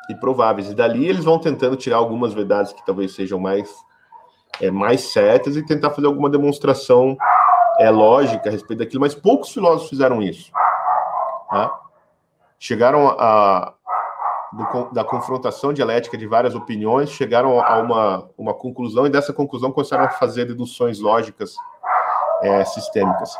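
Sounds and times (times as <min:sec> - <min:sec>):
speech: 0:00.1 - 0:03.9, 0:04.6 - 0:10.7, 0:11.5 - 0:11.8, 0:12.6 - 0:13.8, 0:14.5 - 0:21.7, 0:22.4 - 0:23.3
dog barking: 0:07.2 - 0:08.6, 0:10.5 - 0:12.0, 0:13.9 - 0:18.1, 0:20.0 - 0:20.4, 0:21.6 - 0:23.3.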